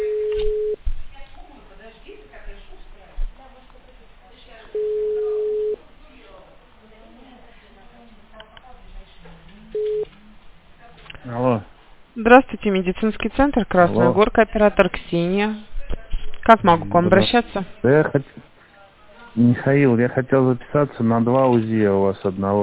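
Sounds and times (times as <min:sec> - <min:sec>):
telephone ringback tone while a call to a patient is being connected: 0:00.0 - 0:00.8, 0:04.8 - 0:05.8, 0:09.8 - 0:10.1
speech: 0:12.3 - 0:15.7, 0:16.5 - 0:18.4, 0:19.4 - 0:22.6.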